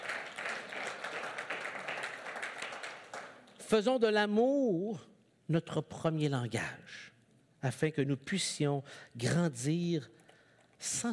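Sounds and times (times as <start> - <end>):
crowd applauding: 0.0 - 3.6
speech: 3.7 - 10.2, 10.8 - 11.1.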